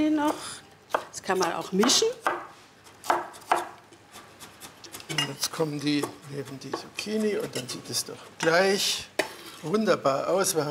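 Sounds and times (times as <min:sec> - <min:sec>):
speech: 0:00.0 - 0:00.6, 0:01.2 - 0:02.4, 0:05.3 - 0:10.6
knife cutting bell peppers into strips: 0:00.9 - 0:01.1, 0:01.7 - 0:05.2, 0:05.8 - 0:07.8.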